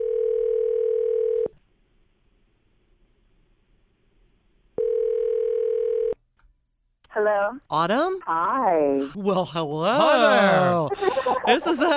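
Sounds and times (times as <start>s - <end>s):
outgoing telephone call ringback tone: 0.0s - 1.5s, 4.8s - 6.2s
speech: 7.2s - 11.9s
laughter: 9.2s - 11.9s.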